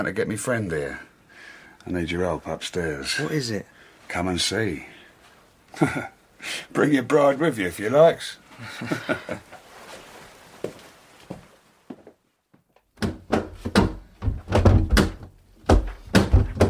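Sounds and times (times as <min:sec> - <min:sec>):
speech: 0:00.0 - 0:01.1, 0:01.8 - 0:04.9, 0:05.7 - 0:09.6
soft shuffling: 0:03.3 - 0:05.7, 0:08.4 - 0:12.2
laughter: 0:05.7 - 0:06.2, 0:08.6 - 0:09.6
locked door in an old house pushed and shaken: 0:13.0 - 0:16.6.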